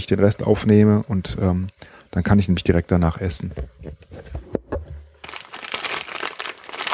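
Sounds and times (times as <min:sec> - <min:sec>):
speech: 0:00.0 - 0:04.4
plastic packaging of chicken-flavoured instant noodle soup packet crinkling: 0:05.2 - 0:06.9.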